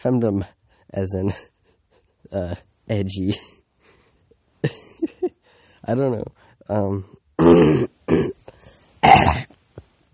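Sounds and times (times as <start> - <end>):
speech: 0.0 - 1.5, 2.2 - 3.6, 4.6 - 5.1, 5.8 - 8.4
person clearing phlegm from throat: 7.4 - 8.4, 9.0 - 9.6.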